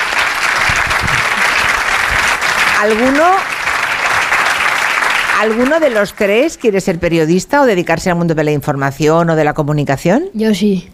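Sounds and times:
audience applause: 0:00.0 - 0:06.6
speech: 0:02.8 - 0:03.6, 0:05.4 - 0:10.9.

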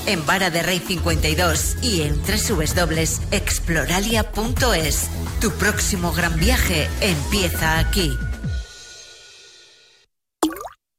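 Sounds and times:
speech: 0:00.0 - 0:08.3
single water drop plopping into water: 0:10.4 - 0:10.8.

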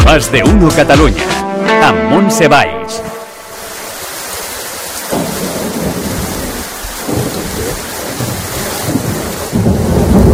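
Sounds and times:
speech: 0:00.2 - 0:03.1
heavy rain during an evening storm in Catalonia: 0:03.3 - 0:10.3
deep rolls of thunder in Catalonia: 0:05.1 - 0:10.3.

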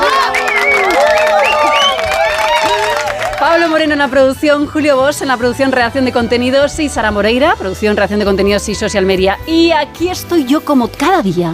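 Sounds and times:
crowd cheering and whooping: 0:00.0 - 0:03.6
audience applause: 0:00.0 - 0:03.8
speech: 0:03.7 - 0:11.5.

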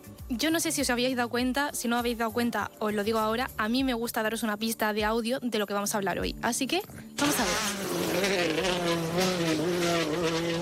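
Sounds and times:
speech: 0:00.3 - 0:09.7
rally car engine roaring at high revs: 0:07.2 - 0:10.6.

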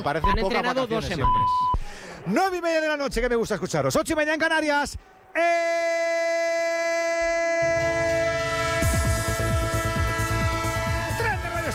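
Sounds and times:
speech: 0:00.0 - 0:06.4
horn-like chord in a train sound effect jingle: 0:07.6 - 0:11.7.

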